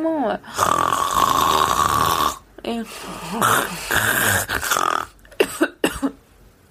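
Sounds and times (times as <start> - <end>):
speech: 0.0 - 1.0, 2.6 - 5.0
woman imitating loud snoring: 0.5 - 5.2.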